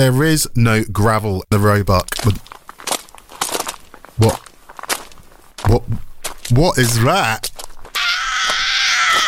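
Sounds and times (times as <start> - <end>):
speech: 0.0 - 2.5, 4.2 - 4.4, 5.7 - 7.5
heavy footsteps: 2.1 - 9.2.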